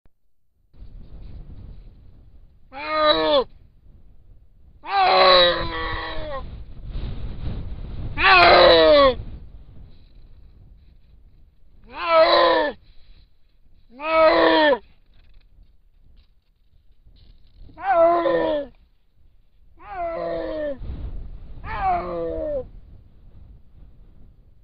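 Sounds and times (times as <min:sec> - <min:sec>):
snow leopard vocalizing: 0:02.7 - 0:03.5, 0:04.8 - 0:06.5, 0:08.2 - 0:09.2, 0:11.8 - 0:12.9, 0:13.9 - 0:14.9, 0:17.7 - 0:18.8, 0:19.8 - 0:20.8.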